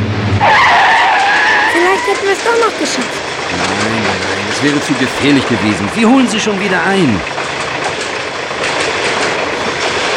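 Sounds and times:
long train wheels roaring past a railway level crossing: 0.0 - 10.1
faint rhythmic clatter of train wheels: 1.2 - 10.1
speech: 2.1 - 7.5.

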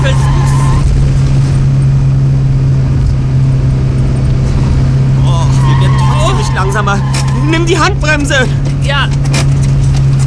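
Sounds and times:
car engine droning while driving fast: 0.0 - 10.2
heavy road and wind noise: 0.0 - 10.2
speech: 7.7 - 9.5.

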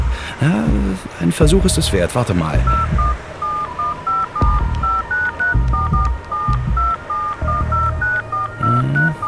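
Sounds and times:
low thumps: 0.0 - 3.7, 4.3 - 8.1
speech: 0.4 - 3.1
soft handling noise: 2.6 - 7.4
mobile phone keypad beeps as a number is typed: 2.6 - 9.2.

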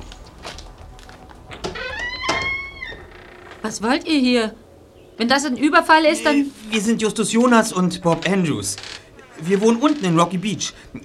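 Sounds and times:
door creaking open slightly on a squeaky hinge: 1.5 - 3.8, 8.1 - 10.3
speech: 3.6 - 4.6, 5.2 - 11.0.

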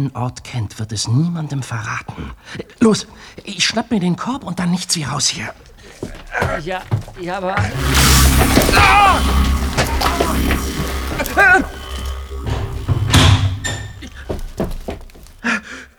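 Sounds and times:
speech: 0.0 - 11.8
wooden trapdoor slammed shut and bolted: 6.0 - 15.5
steady rumble: 7.6 - 15.4.

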